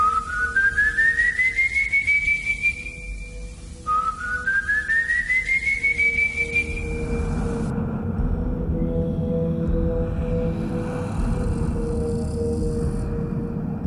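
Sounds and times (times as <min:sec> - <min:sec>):
eerie whistled melody with rising sliding notes: 0:00.0 - 0:13.8
dark low droning hum: 0:06.0 - 0:13.8.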